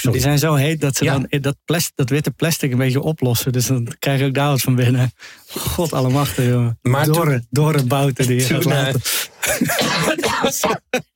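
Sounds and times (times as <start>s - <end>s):
speech: 0.0s - 11.1s
hacking coughs: 8.4s - 11.1s.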